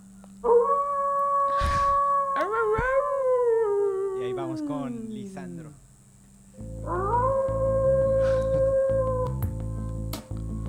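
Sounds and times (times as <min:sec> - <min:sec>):
wolf howling: 0:00.4 - 0:05.8, 0:06.8 - 0:09.8.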